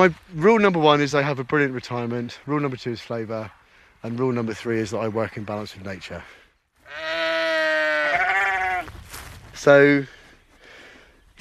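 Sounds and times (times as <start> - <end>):
speech: 0.0 - 7.1, 9.6 - 10.2
old sheep bleating: 6.9 - 8.9.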